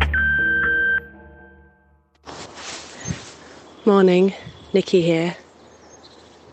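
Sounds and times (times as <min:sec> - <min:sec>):
electronic answering-machine beep: 0:00.1 - 0:01.1
hissy noise: 0:02.3 - 0:06.5
speech: 0:03.9 - 0:05.4.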